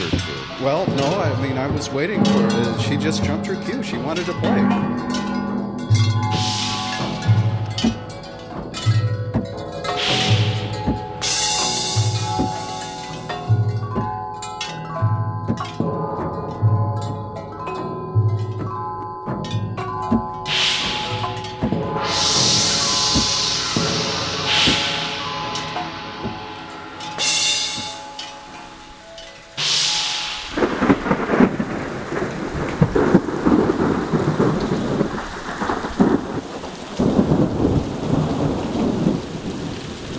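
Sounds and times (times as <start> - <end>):
thunder sheet struck by an elephant: 0.0 - 14.7, 20.4 - 40.1
steady rhythmic musical backing: 0.0 - 31.7
speech: 0.6 - 5.2.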